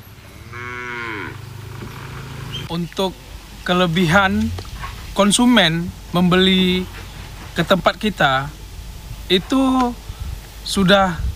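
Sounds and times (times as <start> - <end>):
cow mooing at a market stall selling sacrificial cattle: 0.0 - 2.7
steady hum: 0.0 - 11.3
speech: 2.7 - 4.6, 5.2 - 7.0, 7.6 - 8.6, 9.3 - 10.0, 10.7 - 11.2.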